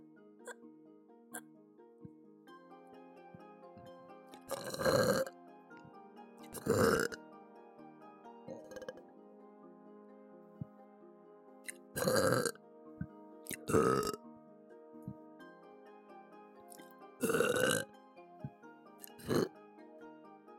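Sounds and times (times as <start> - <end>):
loud burps: 4.4 - 5.4, 6.5 - 7.2, 8.5 - 9.0, 11.7 - 12.6, 13.5 - 14.2, 17.2 - 17.9, 19.1 - 19.5.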